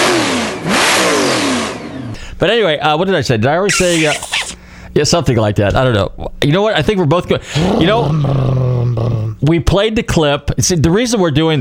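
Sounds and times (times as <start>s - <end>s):
car engine revving: 0.0s - 2.2s
speech: 2.4s - 4.3s, 5.0s - 11.5s.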